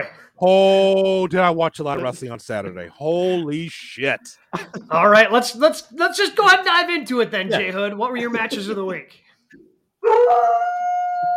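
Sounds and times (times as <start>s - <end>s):
speech: 0.0s - 10.9s
laughter: 1.9s - 2.8s, 4.4s - 5.2s, 7.5s - 9.0s
dog howling: 10.0s - 11.3s.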